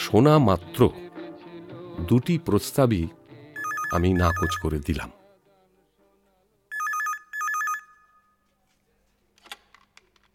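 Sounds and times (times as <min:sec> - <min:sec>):
speech: 0:00.1 - 0:01.0, 0:02.0 - 0:03.2, 0:03.9 - 0:05.2
telephone ringing with bright trilling electronic tone: 0:03.6 - 0:04.8, 0:06.7 - 0:08.4.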